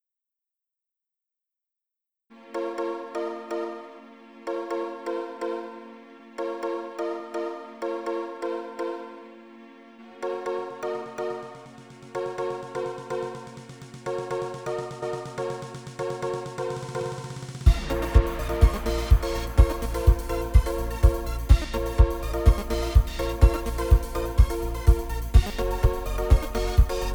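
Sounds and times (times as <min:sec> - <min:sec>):
fitness music tuned to 432 Hz: 0:10.7 - 0:27.1.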